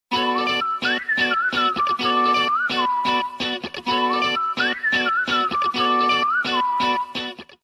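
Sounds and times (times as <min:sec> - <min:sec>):
whistle SMS ringtone: 0:00.1 - 0:07.4.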